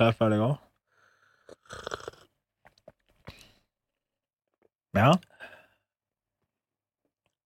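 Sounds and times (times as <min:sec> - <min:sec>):
speech: 0:00.0 - 0:00.7, 0:05.0 - 0:05.3
person slurping tea loudly during tea cupping: 0:01.3 - 0:02.4.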